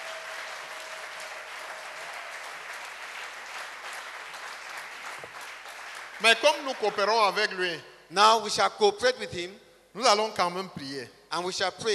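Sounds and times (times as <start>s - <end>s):
large gathering clapping hands: 0.0s - 7.0s
speech: 6.2s - 11.9s.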